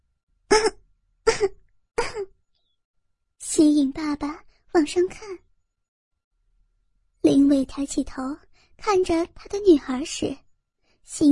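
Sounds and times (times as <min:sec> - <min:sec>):
soft short breathy coughs: 0:00.5 - 0:02.4
speech: 0:04.0 - 0:05.5, 0:07.5 - 0:10.4, 0:11.1 - 0:11.2.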